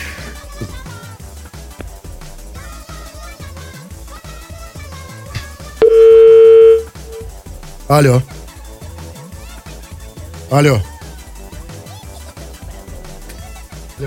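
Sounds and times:
music: 0:00.0 - 0:14.0
loud steady telephone dial tone: 0:05.8 - 0:06.9
speech: 0:07.9 - 0:08.4, 0:10.5 - 0:10.9.

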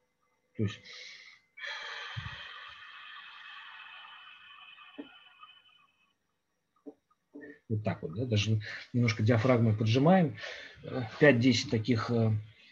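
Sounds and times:
speech: 0:00.6 - 0:01.8, 0:07.7 - 0:12.5
quick intake of breath: 0:00.8 - 0:06.0
long slow exhale through the mouth: 0:00.9 - 0:05.8.

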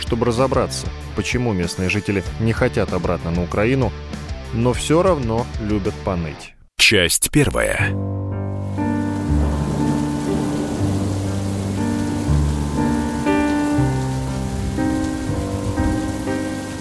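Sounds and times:
soft music with sustained chords: 0:00.0 - 0:06.3, 0:07.9 - 0:16.7
speech: 0:00.1 - 0:08.1
rain falling in Crimea: 0:08.6 - 0:16.7.

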